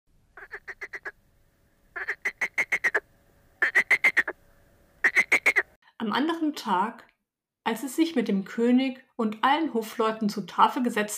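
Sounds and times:
frog croaking: 0:00.4 - 0:01.2, 0:01.9 - 0:04.4, 0:05.0 - 0:05.8
speech: 0:06.1 - 0:07.1, 0:07.7 - 0:11.1.

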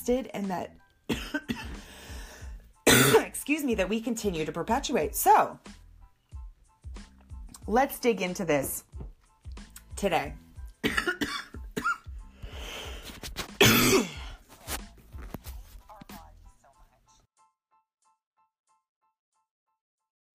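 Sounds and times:
speech: 0:00.0 - 0:01.6, 0:03.1 - 0:05.8, 0:07.7 - 0:08.9, 0:10.0 - 0:11.1
person coughing harshly: 0:01.1 - 0:01.9, 0:02.9 - 0:03.4, 0:10.8 - 0:12.1, 0:13.6 - 0:14.4
strained breaths: 0:01.7 - 0:02.7, 0:12.3 - 0:13.2.

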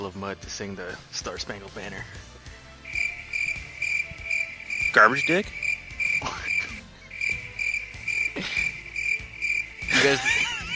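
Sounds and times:
speech: 0:00.0 - 0:02.4, 0:04.9 - 0:05.6, 0:06.2 - 0:06.5, 0:10.0 - 0:10.4
crickets chirping: 0:02.8 - 0:10.1
laughter: 0:09.9 - 0:10.7.

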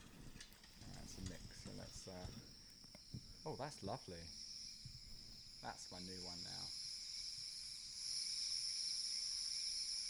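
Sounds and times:
chorus of crickets trilling on a summer night: 0:00.0 - 0:10.0
kettle boiling: 0:00.0 - 0:10.0
speech: 0:01.1 - 0:04.4, 0:05.6 - 0:06.8.

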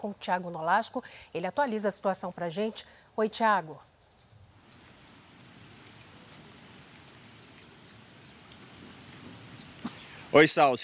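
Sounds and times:
speech: 0:00.0 - 0:03.9, 0:10.3 - 0:10.8
steady light rain: 0:04.6 - 0:10.8
faint bird chirps: 0:05.9 - 0:10.3.

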